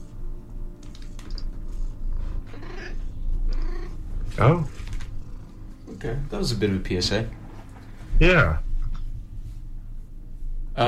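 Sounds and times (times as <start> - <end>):
cat purring: 0.8 - 10.8
cat chirp: 2.5 - 4.0
speech: 4.4 - 4.8, 6.0 - 7.4, 8.2 - 8.6.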